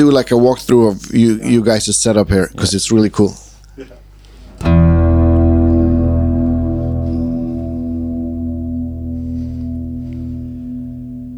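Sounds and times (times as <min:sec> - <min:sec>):
speech: 0:00.0 - 0:04.0
sharp struck note: 0:04.6 - 0:11.3
reverb freeze effect holding a shimmering drone chord: 0:04.7 - 0:11.3.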